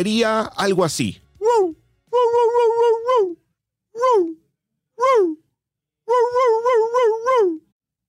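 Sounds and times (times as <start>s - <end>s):
speech: 0.0s - 1.7s
person imitating a dog's whiny high-pitched attention-seeking bark: 1.4s - 3.4s, 4.0s - 4.4s, 5.0s - 5.4s, 6.1s - 7.7s.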